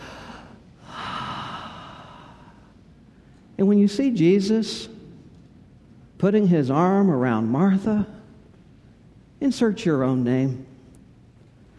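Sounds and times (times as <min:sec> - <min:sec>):
deep breath drawn in during a church sermon: 0:00.0 - 0:02.7
speech: 0:03.6 - 0:04.9, 0:06.2 - 0:08.2, 0:09.4 - 0:10.7.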